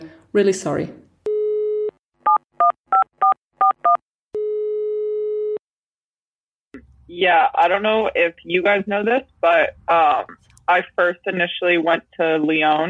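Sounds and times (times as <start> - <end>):
speech: 0.3 - 1.0, 7.2 - 12.8
telephone dial tone: 1.3 - 5.6.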